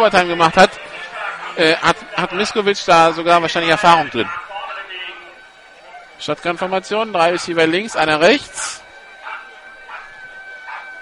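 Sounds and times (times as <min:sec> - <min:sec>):
speech: 0:00.0 - 0:00.9, 0:01.6 - 0:04.4, 0:06.2 - 0:08.8
laughter: 0:00.0 - 0:04.6
constant hum: 0:00.0 - 0:11.0
dog barking: 0:04.2 - 0:04.6, 0:07.3 - 0:07.6, 0:09.2 - 0:11.0.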